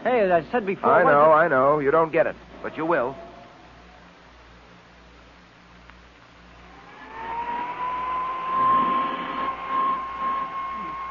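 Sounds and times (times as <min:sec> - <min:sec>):
speech: 0:00.1 - 0:03.3
small hand vacuum cleaner running over a coat: 0:06.7 - 0:11.1.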